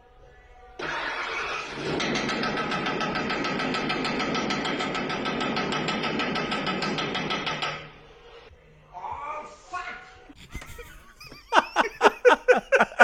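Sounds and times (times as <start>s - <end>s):
car engine cranking and running after repairs: 0.8s - 7.9s
man knocking on a car bumper with a wrench: 0.8s - 8.1s
laughter: 10.3s - 13.0s.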